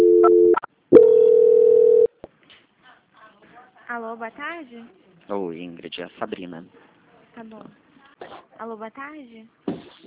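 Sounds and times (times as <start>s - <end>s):
telephone call transfer tones: 0.0s - 2.1s
speech: 4.0s - 9.6s.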